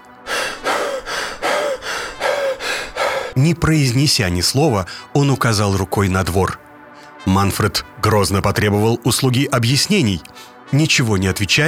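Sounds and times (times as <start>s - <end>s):
frightened out-of-breath man panting heavily: 0.1s - 3.4s, 4.9s - 5.1s, 10.3s - 10.6s
speech: 3.4s - 6.6s, 7.2s - 11.6s.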